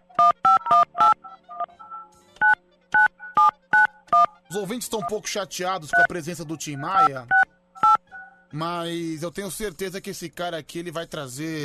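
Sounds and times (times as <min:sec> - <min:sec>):
touch-tone telephone keypad beeps as a number is dialed: 0:00.2 - 0:04.4, 0:07.0 - 0:08.4
speech: 0:04.5 - 0:07.4, 0:08.5 - 0:11.6.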